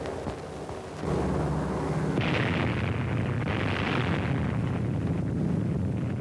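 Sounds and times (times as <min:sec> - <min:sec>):
deep rumbling blast of atomic bomb test: 0:00.2 - 0:06.1
atomic bomb test explosion: 0:02.2 - 0:06.1.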